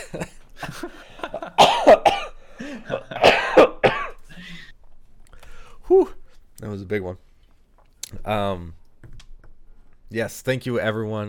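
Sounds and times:
speech: 0.1s - 0.3s, 6.8s - 7.3s, 8.3s - 8.8s, 10.1s - 11.2s
harsh coughing fit: 1.3s - 4.7s.

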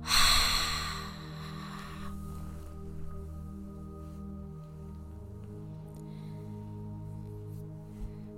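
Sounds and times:
deep breath exhaled forcefully: 0.0s - 2.2s
soft steady musical drone: 0.0s - 8.3s.

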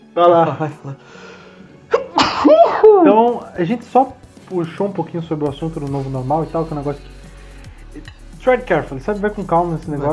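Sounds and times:
speech: 0.2s - 1.3s, 2.4s - 7.2s, 8.0s - 10.1s
quick sharp intake of breath: 1.0s - 1.7s
loud sneeze with short voiced exhale: 1.9s - 3.0s.

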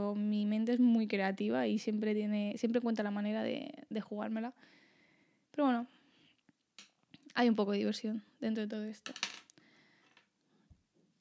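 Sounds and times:
speech: 0.0s - 4.8s, 5.6s - 6.0s, 7.3s - 9.3s
pen dropping onto a hard surface: 9.0s - 9.5s.

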